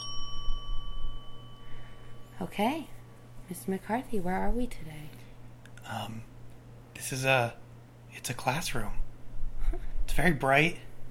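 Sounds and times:
bell ringing with bright overtones: 0:00.0 - 0:02.5
low hum: 0:00.0 - 0:11.0
speech: 0:02.4 - 0:05.2, 0:05.9 - 0:06.3, 0:07.0 - 0:09.0, 0:09.7 - 0:10.9.

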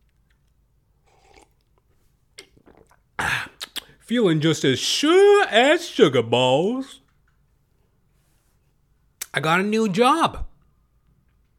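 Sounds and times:
person taking a quick sip of water: 0:00.1 - 0:04.0
speech: 0:04.1 - 0:07.0, 0:09.4 - 0:10.5.

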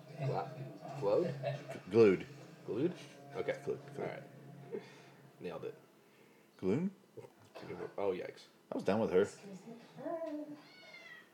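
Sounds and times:
speech: 0:00.2 - 0:05.8, 0:06.6 - 0:10.8
cat meowing: 0:10.5 - 0:11.3.

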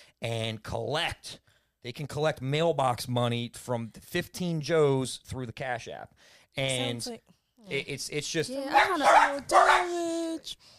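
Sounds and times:
speech: 0:00.2 - 0:10.7
dogs barking and whining: 0:08.7 - 0:10.0.

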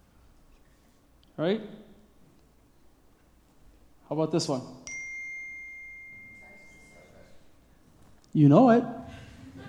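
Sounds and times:
faint sound: 0:00.0 - 0:09.6
speech: 0:01.4 - 0:01.8, 0:04.1 - 0:04.8, 0:08.4 - 0:09.0
phone notification chime: 0:04.9 - 0:07.4.

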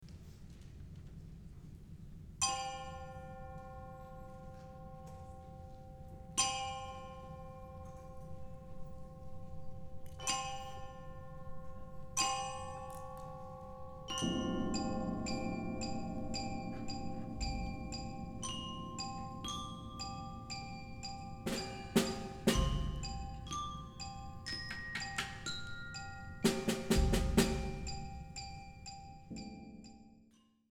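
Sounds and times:
soft percussion intro: 0:00.0 - 0:30.7
low rumble: 0:14.2 - 0:23.9.

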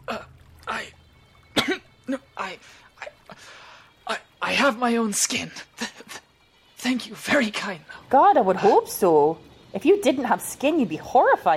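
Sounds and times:
man coughing: 0:01.6 - 0:02.3
speech: 0:04.1 - 0:05.7, 0:06.8 - 0:11.5.

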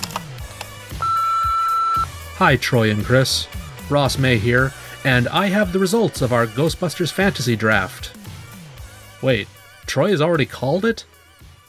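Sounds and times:
voicemail system beeps as a voicemail box is opened: 0:01.0 - 0:02.1
speech: 0:02.4 - 0:08.2, 0:09.2 - 0:11.1.

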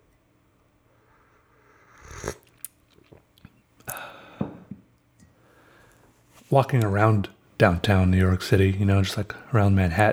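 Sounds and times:
person slurping coffee: 0:01.7 - 0:03.2
swallowing: 0:01.8 - 0:04.9
soft mouth clicks: 0:01.9 - 0:05.3
speech: 0:06.5 - 0:10.1.

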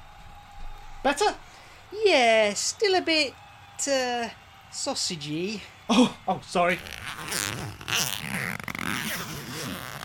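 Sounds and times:
speech: 0:01.0 - 0:08.4
clothing zipper pulled in long raspy strokes: 0:06.8 - 0:10.0.

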